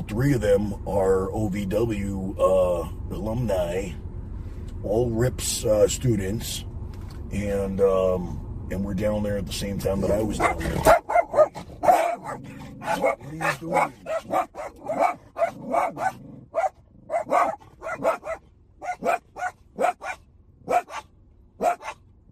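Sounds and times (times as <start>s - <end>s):
speech: 0.1s - 4.0s, 4.8s - 6.7s, 7.3s - 11.0s, 12.4s - 16.4s
dogs barking excitedly: 10.1s - 22.1s.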